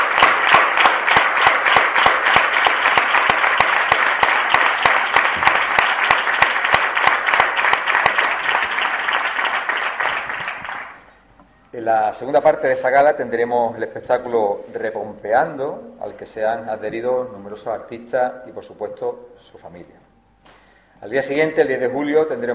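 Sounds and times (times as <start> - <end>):
large audience applause: 0.0 - 11.1
speech: 11.9 - 20.0, 21.0 - 22.5.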